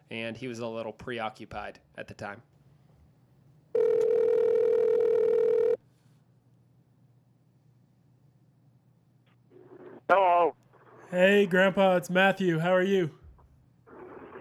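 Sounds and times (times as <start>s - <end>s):
speech: 0.1s - 2.5s, 11.1s - 13.2s
ringback tone on a phone line: 3.8s - 5.8s.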